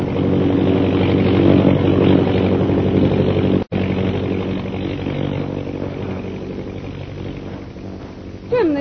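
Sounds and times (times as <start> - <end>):
airplane engine drone passing overhead: 0.0 - 8.7.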